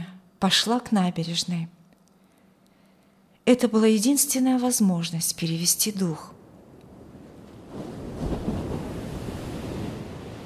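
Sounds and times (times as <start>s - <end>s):
speech: 0.4s - 1.8s, 3.5s - 6.4s
ocean waves crashing on shore: 6.9s - 10.4s.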